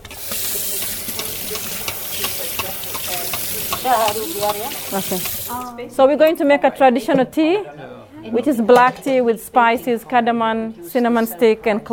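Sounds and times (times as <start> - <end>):
Somali samosas frying in hot oil: 0.0 - 5.7
speech: 3.8 - 11.9.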